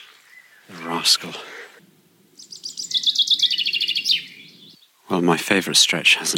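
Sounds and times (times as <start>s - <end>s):
birdsong trill at dawn: 0.0s - 5.0s
low outdoor rumble: 0.7s - 5.5s
speech: 1.0s - 1.6s, 5.1s - 6.3s.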